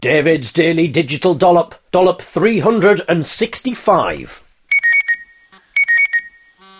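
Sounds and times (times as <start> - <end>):
speech: 0.0 - 4.4
alarm clock beeping: 4.7 - 6.7
steady buzzing electronic tone: 4.7 - 6.7.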